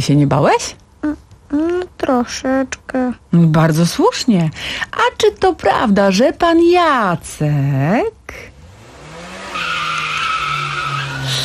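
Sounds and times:
speech: 0:00.0 - 0:08.5
speeding car low engine tone: 0:08.3 - 0:11.4
speeding car tyres skidding with high squeal: 0:09.2 - 0:11.4.

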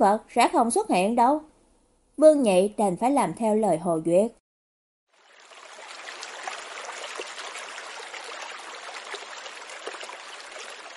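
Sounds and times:
speech: 0:00.0 - 0:01.5, 0:02.2 - 0:04.4
flowing water with faint gurgles: 0:05.1 - 0:10.9.

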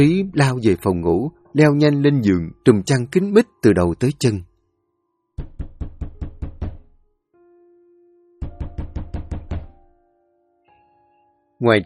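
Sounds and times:
speech: 0:00.0 - 0:04.5, 0:11.6 - 0:11.8
urgent heavy pounding on a door: 0:05.4 - 0:07.0, 0:08.4 - 0:09.8.

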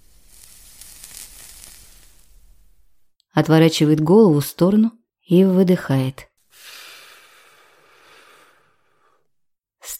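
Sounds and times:
cigarette tip sizzling as a smoker draws deeply on it: 0:00.0 - 0:02.8
speech: 0:03.4 - 0:06.3.

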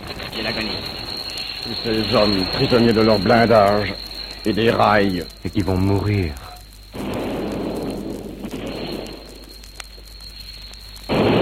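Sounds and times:
artillery fire from a revolutionary army shelling an armored train: 0:00.0 - 0:02.9, 0:06.9 - 0:09.6, 0:11.0 - 0:11.4
speech: 0:00.1 - 0:06.4.

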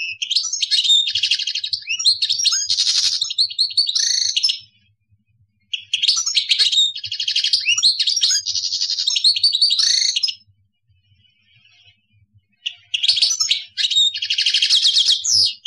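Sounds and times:
European goldfinch singing: 0:00.0 - 0:04.7, 0:05.7 - 0:10.5, 0:12.5 - 0:15.6.

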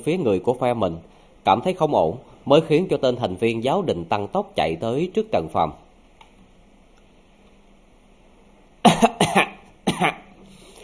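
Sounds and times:
speech: 0:00.0 - 0:05.8, 0:09.0 - 0:10.2
man dry coughing: 0:08.8 - 0:10.3.

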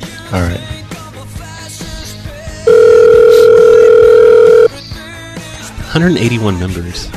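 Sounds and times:
speech: 0:00.3 - 0:00.7, 0:06.0 - 0:07.1
telephone dial tone while placing a call: 0:02.7 - 0:04.7.

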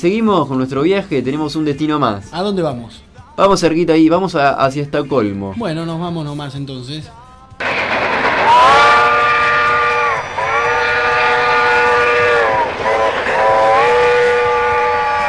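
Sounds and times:
speech: 0:00.0 - 0:07.2
old steam locomotive whistle at a railway museum: 0:07.6 - 0:15.2.

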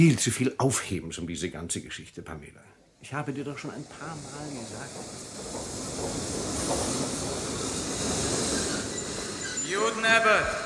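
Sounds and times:
speech: 0:00.0 - 0:07.0, 0:09.7 - 0:10.6
train pulling into a station rumbling: 0:03.4 - 0:10.6.

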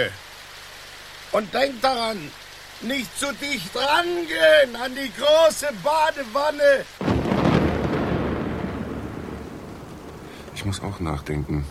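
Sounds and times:
speech: 0:00.0 - 0:00.2, 0:01.3 - 0:07.1, 0:10.6 - 0:11.6
rain hiss: 0:00.0 - 0:11.6
rumbling thunder from a thunderstorm: 0:07.0 - 0:11.6.

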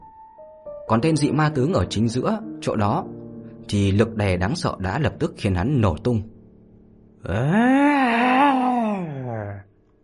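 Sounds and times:
speech: 0:00.9 - 0:06.3, 0:07.2 - 0:07.9
anguished wail blending into a groan: 0:07.2 - 0:09.6.

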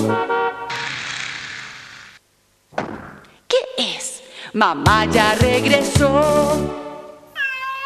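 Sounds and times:
car horn honking: 0:00.0 - 0:00.8
speech: 0:04.6 - 0:06.8.

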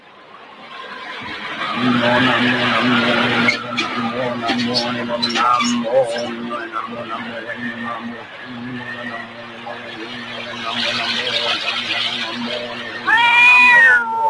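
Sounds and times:
busy noise: 0:00.0 - 0:14.2
frightened cartoon cat meowing: 0:13.0 - 0:14.2.

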